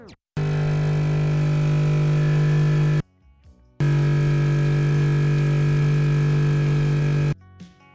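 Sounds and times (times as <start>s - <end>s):
coffee machine loud steady electric hum: 0.4s - 3.0s, 3.8s - 7.4s.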